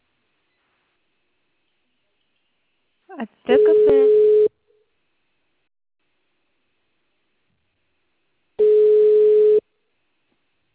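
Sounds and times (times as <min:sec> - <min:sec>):
speech: 0:03.1 - 0:04.2
telephone busy tone after dropped call: 0:03.6 - 0:04.5, 0:08.6 - 0:09.6.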